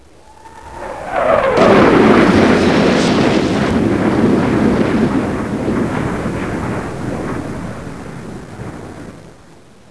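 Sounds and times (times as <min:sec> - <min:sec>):
flyby: 0:00.0 - 0:06.7.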